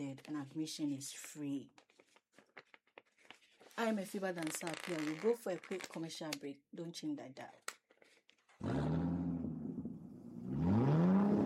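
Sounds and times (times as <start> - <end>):
speech: 0.0 - 1.9, 3.8 - 7.7
car engine starting and revving: 8.6 - 11.4.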